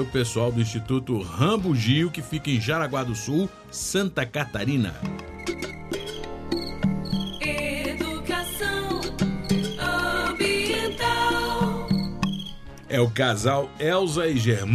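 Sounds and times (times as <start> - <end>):
speech: 0.0 - 5.3, 12.9 - 14.7
frog calling: 5.2 - 12.8.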